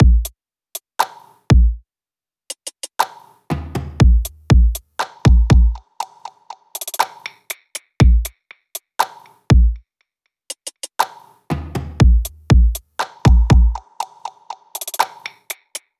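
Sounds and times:
pop full drum loop: 0:02.5 - 0:09.8, 0:10.5 - 0:15.9.

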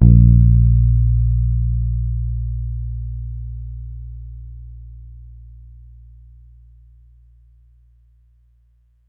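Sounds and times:
electric bass one-shot note B flat: 0:00.0 - 0:07.2.

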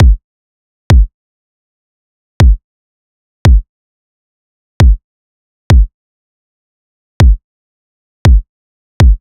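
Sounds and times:
pop kick drum loop: 0:00.0 - 0:00.2, 0:00.9 - 0:01.1, 0:02.4 - 0:02.6, 0:04.8 - 0:05.0, 0:05.7 - 0:05.9, 0:07.2 - 0:07.4, 0:09.0 - 0:09.1.

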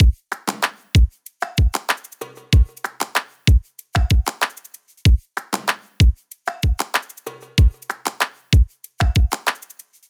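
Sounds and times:
full pop drum loop: 0:00.0 - 0:04.5, 0:05.1 - 0:09.6.

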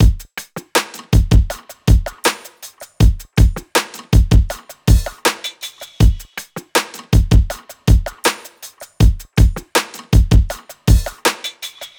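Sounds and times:
full pop drum loop: 0:00.0 - 0:11.9.

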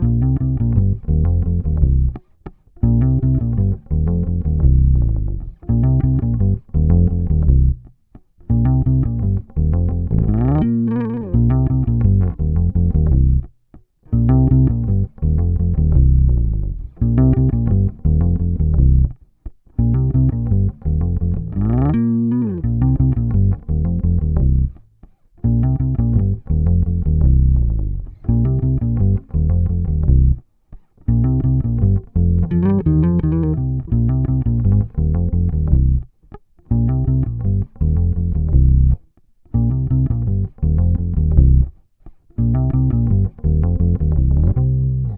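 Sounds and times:
electric bass loop in C minor: 0:00.0 - 0:13.5, 0:14.1 - 0:19.2, 0:19.8 - 0:24.8, 0:25.4 - 0:30.4, 0:31.0 - 0:41.8, 0:42.4 - 0:45.1.

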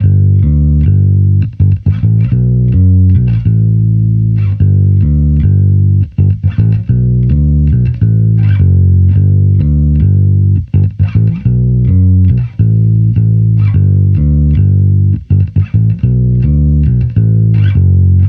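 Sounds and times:
electric bass loop: 0:00.0 - 0:18.2.

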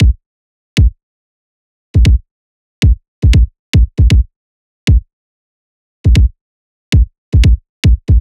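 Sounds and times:
pop kick drum loop: 0:00.0 - 0:00.2, 0:02.0 - 0:02.2, 0:02.8 - 0:04.3, 0:04.9 - 0:05.1, 0:06.0 - 0:08.1.

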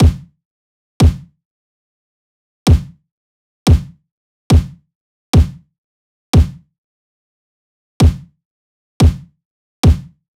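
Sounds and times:
pop kick drum loop at 90 BPM: 0:00.0 - 0:00.3, 0:01.0 - 0:01.3, 0:02.7 - 0:03.0, 0:03.7 - 0:04.8, 0:05.4 - 0:05.6, 0:06.4 - 0:06.6, 0:08.0 - 0:08.3, 0:09.0 - 0:10.2.

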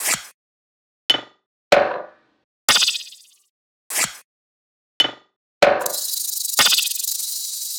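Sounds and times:
percussion loop from a drum sample pack: 0:02.7 - 0:03.4, 0:05.8 - 0:07.7.

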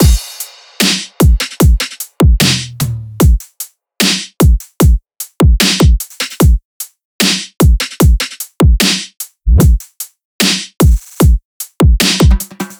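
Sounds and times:
full drum loops at 150: 0:00.0 - 0:06.6, 0:07.2 - 0:12.7.

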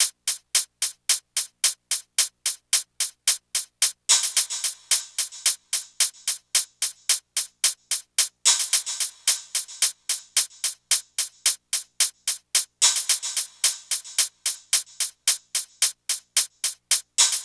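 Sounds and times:
hi-hat drum loop: 0:00.0 - 0:17.4.

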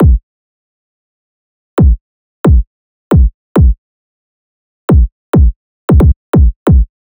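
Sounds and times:
kick drum loop at 135 BPM: 0:00.0 - 0:00.2, 0:01.8 - 0:03.8, 0:04.9 - 0:06.9.

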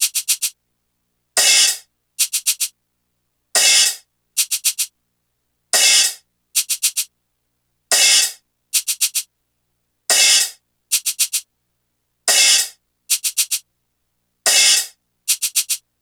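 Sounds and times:
hi-hat drum loop: 0:00.0 - 0:00.5, 0:01.4 - 0:02.7, 0:03.6 - 0:04.9, 0:05.8 - 0:07.1, 0:07.9 - 0:09.3, 0:10.1 - 0:11.4, 0:12.3 - 0:13.6, 0:14.5 - 0:15.8.

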